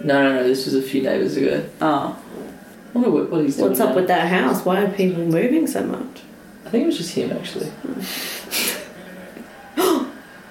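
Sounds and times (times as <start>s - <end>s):
speech: 0.0s - 2.3s, 2.9s - 8.7s
person gasping: 9.8s - 10.2s.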